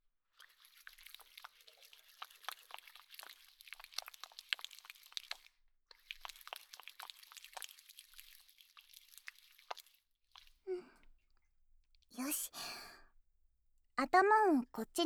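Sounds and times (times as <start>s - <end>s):
wet squelching and crackling of shampoo lathered between hands: 0.4s - 10.6s
short soft vocal sound: 12.2s - 13.0s
speech: 14.0s - 15.0s.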